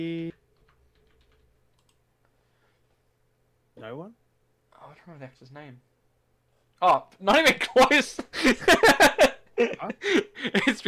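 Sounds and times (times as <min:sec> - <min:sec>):
typing on a computer keyboard: 0:00.6 - 0:02.0
speech: 0:05.0 - 0:05.9, 0:06.8 - 0:10.8
laughter: 0:07.4 - 0:10.8.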